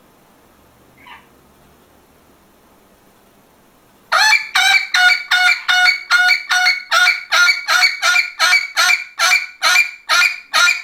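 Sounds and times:
parrot giving loud harsh squawks: 1.0 - 1.3, 4.2 - 10.8.

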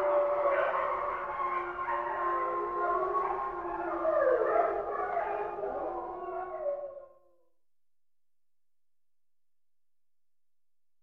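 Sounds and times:
wolves howling together: 0.0 - 7.4.

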